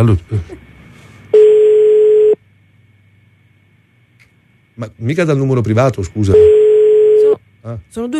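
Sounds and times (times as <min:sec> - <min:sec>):
speech: 0:00.0 - 0:00.6, 0:04.8 - 0:06.6, 0:07.6 - 0:08.1
telephone ringing tone low beep: 0:01.4 - 0:02.4, 0:06.3 - 0:07.4.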